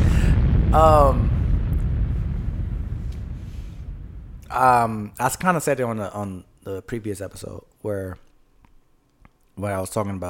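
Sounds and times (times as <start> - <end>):
explosion sound effect with deep booming rumble: 0.0 - 5.2
speech: 0.7 - 1.3, 4.6 - 8.2, 9.6 - 10.2.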